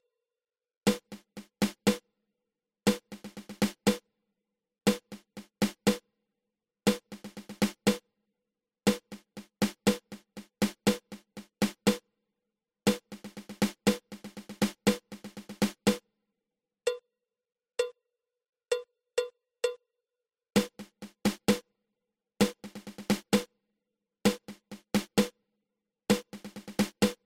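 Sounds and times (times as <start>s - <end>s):
six stroke drum roll: 0.9s - 2.0s, 2.9s - 4.0s, 4.9s - 6.0s, 6.9s - 8.0s, 8.9s - 12.0s, 12.9s - 16.0s, 20.6s - 21.6s, 22.4s - 23.5s, 24.3s - 25.3s, 26.1s - 27.2s.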